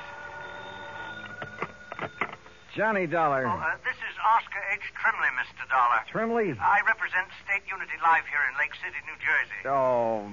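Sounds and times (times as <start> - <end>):
old telephone beside a bed ringing: 0.0 - 2.9
hum: 0.0 - 10.3
speech: 2.8 - 10.3.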